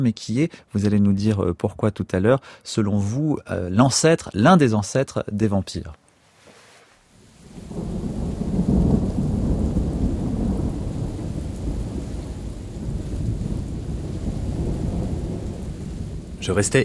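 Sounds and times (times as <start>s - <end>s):
speech: 0.0s - 6.0s, 16.4s - 16.8s
steady rainfall: 6.6s - 16.8s
thunder rumbling: 7.4s - 16.8s.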